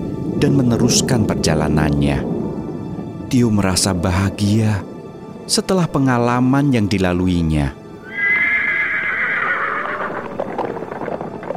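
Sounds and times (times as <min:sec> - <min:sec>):
speech: 0:00.3 - 0:02.3, 0:03.3 - 0:04.9, 0:05.5 - 0:07.8
black horse neighing: 0:08.0 - 0:11.3.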